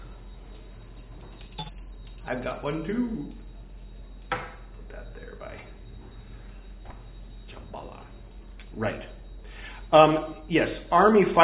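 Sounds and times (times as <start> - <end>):
puja bell ringing during Buddhist worship: 0.0 - 4.8
speech: 2.3 - 3.4, 8.8 - 9.2, 9.9 - 11.4.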